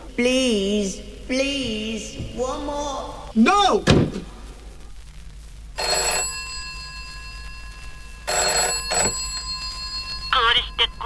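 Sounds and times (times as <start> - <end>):
speech: 0.2 - 4.2
old-fashioned British telephone bell ringing in trilling bursts: 5.8 - 11.0.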